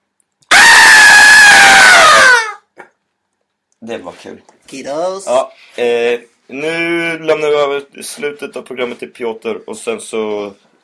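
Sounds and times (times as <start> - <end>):
person screaming: 0.5 - 2.7
speech: 3.9 - 10.7.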